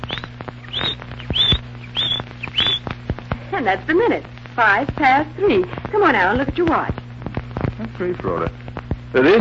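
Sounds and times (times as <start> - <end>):
canary chirping: 0.0 - 3.0
faint steady low hum: 0.0 - 9.4
speech: 3.6 - 7.0, 8.0 - 9.4.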